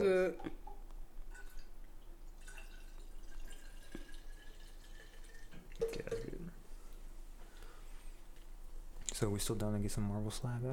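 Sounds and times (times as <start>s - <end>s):
speech: 0.0s - 0.6s, 9.2s - 10.7s
liquid pouring into a cup: 0.6s - 6.6s.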